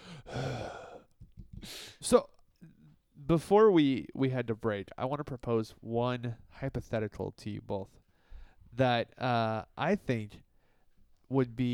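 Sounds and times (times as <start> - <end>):
person imitating heavy breathing: 0.0 - 2.0
speech: 2.0 - 2.4, 3.3 - 8.0, 8.8 - 10.5, 11.3 - 11.7.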